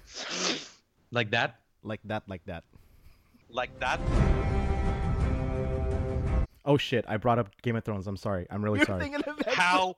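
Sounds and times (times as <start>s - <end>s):
sharp hissing nasal sniffle: 0.0s - 0.8s
speech: 1.1s - 2.8s, 3.5s - 4.6s, 5.6s - 9.9s.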